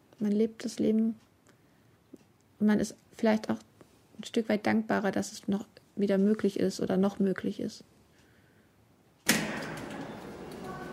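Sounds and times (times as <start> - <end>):
speech: 0.2 - 1.3, 2.6 - 7.9
door shutting with a thud: 9.2 - 10.9.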